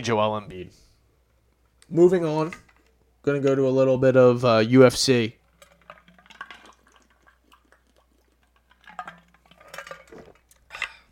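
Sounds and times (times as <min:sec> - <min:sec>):
speech: 0:00.0 - 0:00.9, 0:01.9 - 0:02.6, 0:03.2 - 0:05.4
ice cubes rattling and clinking inside a water bottle: 0:05.4 - 0:11.0
liquid sloshing in a water bottle: 0:05.4 - 0:11.1.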